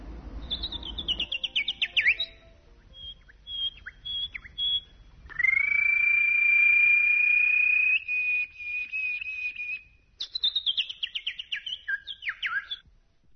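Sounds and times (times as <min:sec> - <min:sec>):
small birds chirping: 0:00.3 - 0:12.9
long steady high trilling bird whistle: 0:00.4 - 0:09.8.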